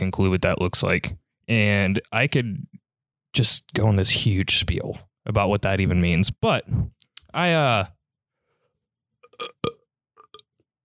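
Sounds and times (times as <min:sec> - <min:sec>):
speech: 0:00.1 - 0:02.7, 0:03.3 - 0:08.0, 0:09.4 - 0:09.8
loud voiced burp: 0:09.2 - 0:10.5.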